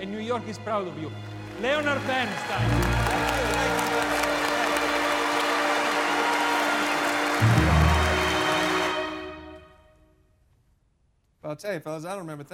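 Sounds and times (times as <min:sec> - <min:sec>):
speech: 0:00.0 - 0:04.1, 0:11.5 - 0:12.5
large concert audience applauding at Carnegie Hall in New York: 0:01.2 - 0:09.7.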